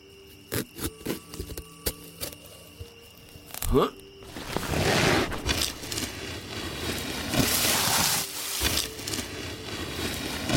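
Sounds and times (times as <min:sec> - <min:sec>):
speech: 0:03.7 - 0:04.0
salt being poured out onto floor: 0:04.6 - 0:10.5.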